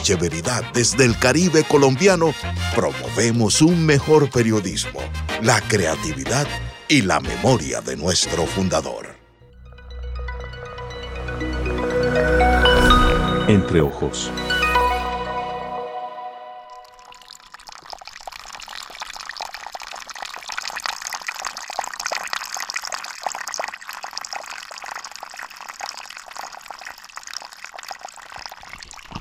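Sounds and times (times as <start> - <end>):
speech: 0.0 - 9.1, 13.5 - 14.4
brief tonal note: 9.6 - 17.0
small trickle of water flowing: 16.7 - 29.1.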